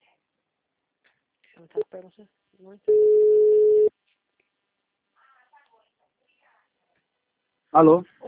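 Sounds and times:
speech: 0:01.6 - 0:03.5, 0:07.7 - 0:08.2
telephone busy tone after a dropped call: 0:02.9 - 0:03.9.

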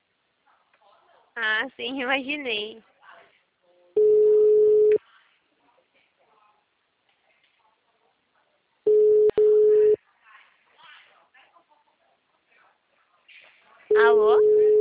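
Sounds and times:
faint noise: 0:00.0 - 0:14.7
speech: 0:01.4 - 0:02.9
telephone ringback tones on a telephone line during a call: 0:04.0 - 0:05.0, 0:08.9 - 0:10.0, 0:13.9 - 0:14.7.

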